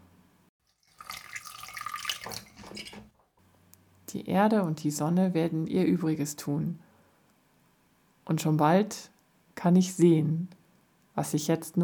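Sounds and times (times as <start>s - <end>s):
water pouring onto freshly sown moist soil: 0.7s - 3.0s
speech: 4.1s - 6.9s, 8.3s - 10.6s, 11.2s - 11.8s.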